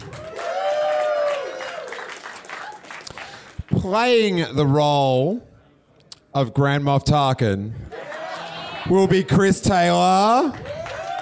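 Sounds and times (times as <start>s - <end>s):
audience applause: 0.0s - 3.7s, 8.0s - 8.8s, 10.4s - 11.2s
speech: 3.8s - 5.5s, 6.3s - 7.9s, 8.8s - 10.7s.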